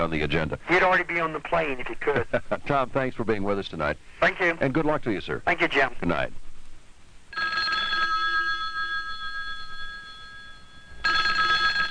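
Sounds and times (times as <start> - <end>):
speech: 0.0 - 6.4
telephone ringing with a bright electronic tone: 7.3 - 11.8.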